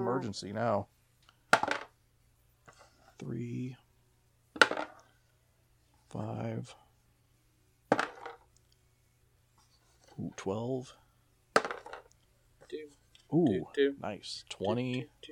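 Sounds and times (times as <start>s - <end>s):
speech: 0.1s - 1.0s, 3.2s - 3.8s, 6.1s - 6.8s, 10.2s - 11.0s, 12.7s - 15.2s
dice tumbling across a table: 1.6s - 1.9s, 4.6s - 5.0s, 7.9s - 8.5s, 11.6s - 12.1s.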